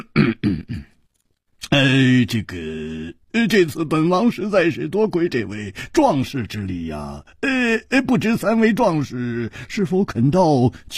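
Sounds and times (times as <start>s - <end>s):
storyteller imitating a king's heavy, deliberate cough: 0.0s - 1.0s
drawn-out spoken syllable: 1.6s - 10.0s
speech: 1.8s - 10.9s.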